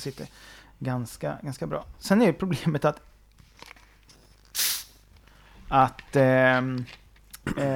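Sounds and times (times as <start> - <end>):
speech: 0.0 - 3.1, 5.7 - 7.7
fizzy drink bottle cracked open with hissing gas: 4.4 - 5.0.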